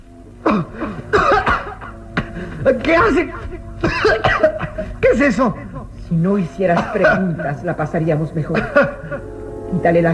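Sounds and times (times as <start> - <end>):
child coughing from pungent herb smell: 0.4 - 2.0, 3.8 - 4.9, 6.8 - 7.3
speech: 2.6 - 10.1.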